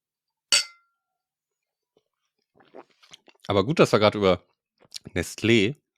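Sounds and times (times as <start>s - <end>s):
glasses clinking in a toast: 0.6s - 0.9s
speech: 2.7s - 5.8s.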